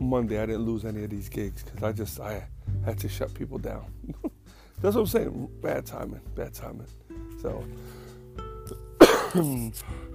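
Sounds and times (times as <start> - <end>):
speech: 0.1 - 8.0, 8.7 - 10.1
person with fever coughing: 9.0 - 9.8.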